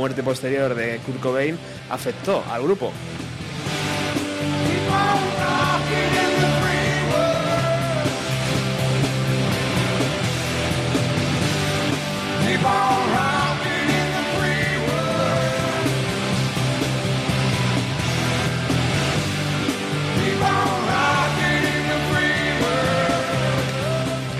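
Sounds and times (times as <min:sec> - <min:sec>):
speech: 0:00.0 - 0:03.2
distorted electric guitars at a live rock performance: 0:00.0 - 0:24.3.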